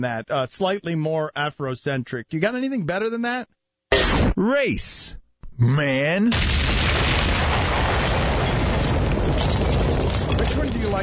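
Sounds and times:
speech: 0:00.0 - 0:06.7, 0:10.5 - 0:11.0
explosion: 0:06.3 - 0:11.0
glass breaking: 0:06.4 - 0:11.0.

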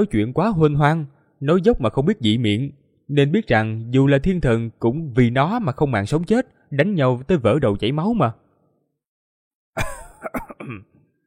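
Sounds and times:
speech: 0:00.0 - 0:08.4, 0:09.8 - 0:10.9
old man coughing: 0:09.8 - 0:11.0
old man clearing his throat: 0:09.8 - 0:11.1.

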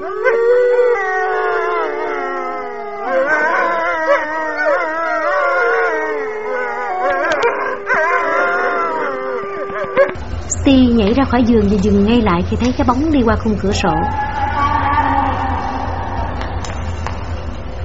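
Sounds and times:
speech: 0:00.0 - 0:00.4, 0:10.7 - 0:14.4
dog howling beyond a lake: 0:00.0 - 0:10.2, 0:13.8 - 0:16.9.

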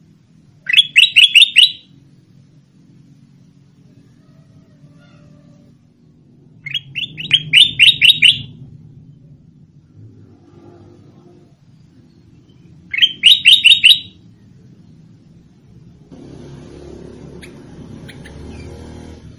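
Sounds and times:
Sooty-headed bulbul song of rapid whistled notes: 0:00.7 - 0:01.8, 0:06.7 - 0:08.5, 0:12.9 - 0:14.1
low rumbling hum: 0:01.8 - 0:19.3.

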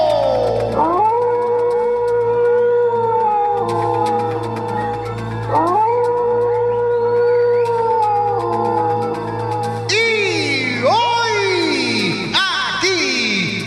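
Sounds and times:
wolf howling in a pack: 0:00.0 - 0:10.8
steady low drone: 0:00.0 - 0:13.6.

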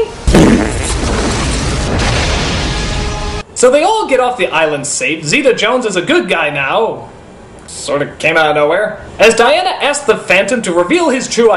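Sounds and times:
loud rumbling explosions on an island: 0:00.1 - 0:03.4
speech: 0:03.6 - 0:11.5.

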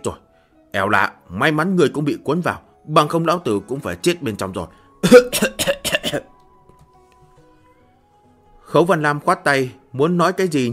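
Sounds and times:
speech: 0:00.0 - 0:06.3, 0:08.7 - 0:10.7
person coughing dry and harsh: 0:05.0 - 0:06.3.

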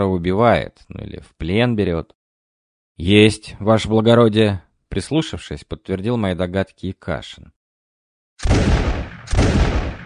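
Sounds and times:
speech: 0:00.0 - 0:02.2, 0:03.0 - 0:07.6
pistol gunshots fired across a forest clearing: 0:08.4 - 0:10.0.

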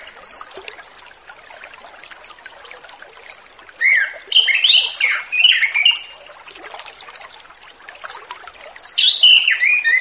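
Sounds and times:
orange-headed thrush whistled song: 0:03.8 - 0:06.1, 0:08.8 - 0:09.9.

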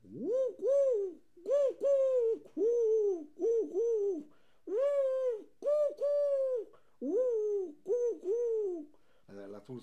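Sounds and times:
wood pigeon cooing: 0:00.0 - 0:08.9.

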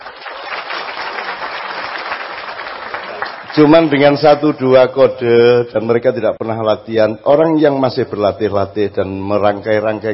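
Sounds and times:
audience at a gathering applauding: 0:00.0 - 0:04.3
speech: 0:03.6 - 0:10.1.

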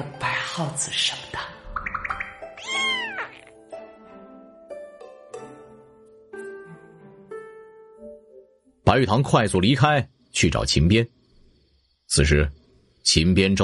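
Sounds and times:
speech: 0:00.0 - 0:01.5, 0:08.9 - 0:11.2, 0:12.1 - 0:13.6
cat meowing: 0:02.6 - 0:03.6.

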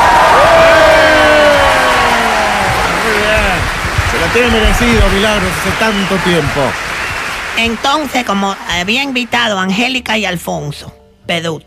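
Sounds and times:
audience whooping: 0:00.0 - 0:08.2
audience clapping: 0:00.0 - 0:09.6
speech: 0:04.4 - 0:06.9, 0:07.6 - 0:11.6.

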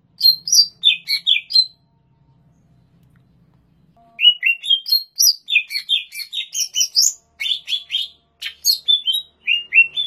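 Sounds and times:
Greater green leafbird song with sharp whistled notes and trills in Banyuwangi: 0:00.2 - 0:03.0, 0:03.7 - 0:10.0.

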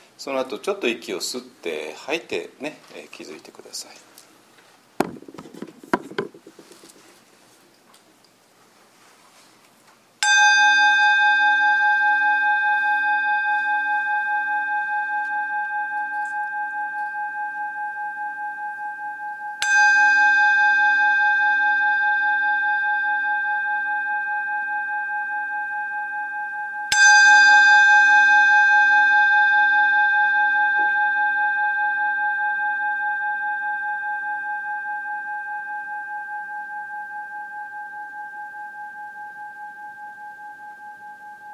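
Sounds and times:
speech: 0:00.2 - 0:04.2
meditation bell struck: 0:10.2 - 0:41.5.

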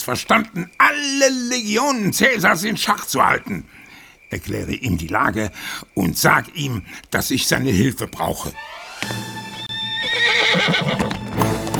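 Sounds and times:
speech: 0:00.0 - 0:09.5, 0:10.2 - 0:11.2
horse whinnying loudly as its rider sets off at night: 0:08.4 - 0:11.6
horse hooves clip-clopping as a rider sets off: 0:08.9 - 0:11.7.

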